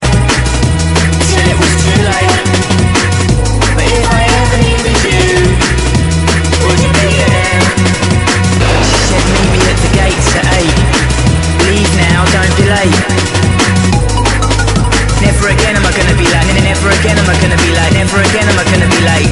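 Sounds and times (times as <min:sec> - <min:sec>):
drum and bass music: 0:00.0 - 0:19.3.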